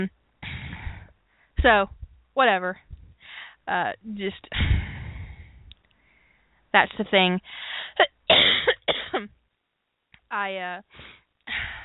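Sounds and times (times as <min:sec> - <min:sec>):
speech: 0:00.0 - 0:00.2, 0:01.6 - 0:03.0, 0:03.7 - 0:04.9, 0:06.8 - 0:08.1, 0:10.3 - 0:11.7
harsh coughing: 0:08.0 - 0:09.3.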